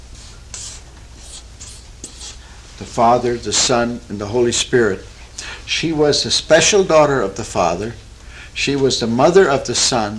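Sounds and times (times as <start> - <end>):
steady low hum: 0.0 - 10.1
scratchy strokes of a diagram being drawn by hand: 0.5 - 2.4
speech: 2.8 - 5.1, 5.7 - 8.0, 8.6 - 10.1.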